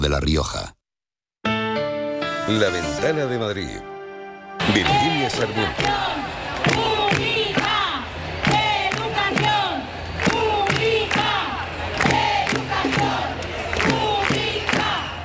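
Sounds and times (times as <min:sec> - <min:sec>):
speech: 0:00.0 - 0:00.8, 0:02.5 - 0:03.9, 0:04.7 - 0:06.4
crowd of striking teachers chanting at a protest march: 0:04.6 - 0:15.2.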